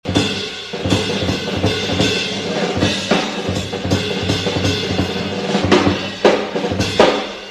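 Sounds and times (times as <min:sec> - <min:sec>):
drum solo: 0:00.0 - 0:07.5.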